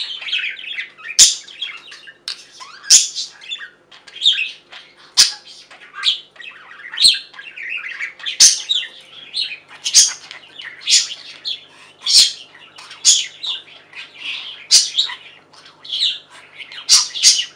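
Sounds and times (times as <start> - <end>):
budgerigar warbling chatter: 0.0 - 17.5.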